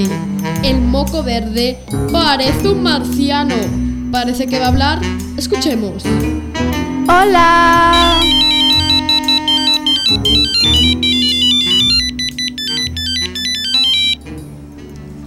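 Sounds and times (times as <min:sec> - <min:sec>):
speech: 0:00.0 - 0:06.4, 0:07.1 - 0:08.3
electronic telephone ringtone melody over a musical backing: 0:07.4 - 0:14.2.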